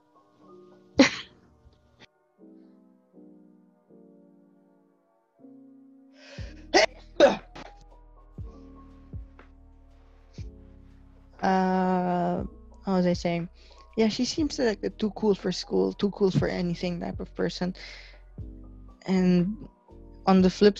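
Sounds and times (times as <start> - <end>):
faint tonal music: 0.0 - 5.4, 6.1 - 20.7
person sneezing: 1.0 - 1.3
speech: 13.0 - 18.1, 19.0 - 20.7.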